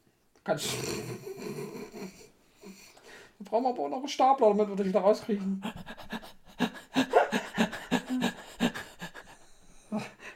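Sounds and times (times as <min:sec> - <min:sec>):
speech: 0:00.5 - 0:01.6, 0:03.5 - 0:05.8
person panting heavily: 0:05.6 - 0:10.3.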